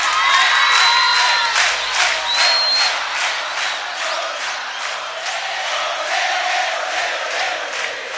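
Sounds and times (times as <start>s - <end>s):
shrill whistles: 0.0s - 5.4s
crowd clapping in unison: 0.0s - 8.1s.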